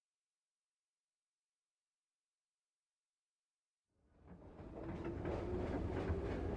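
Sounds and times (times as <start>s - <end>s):
moving train rumble heard inside the carriage: 4.1s - 6.5s.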